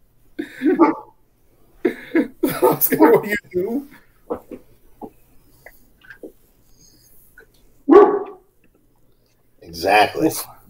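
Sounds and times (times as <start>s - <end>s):
dog barking: 0.6s - 1.2s, 7.9s - 8.5s
laughter: 1.9s - 3.8s
speech: 2.8s - 4.4s, 9.8s - 10.5s.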